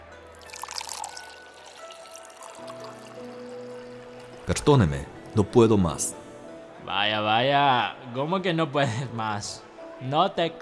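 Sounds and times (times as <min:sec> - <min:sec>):
drink being poured into a larger glass: 0:00.3 - 0:05.6
speech: 0:04.5 - 0:06.2, 0:06.8 - 0:10.6.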